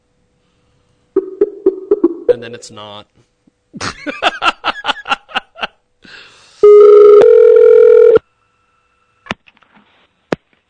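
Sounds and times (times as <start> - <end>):
speech: 2.4 - 4.3
telephone touch-tone dialing beeps: 6.6 - 8.2.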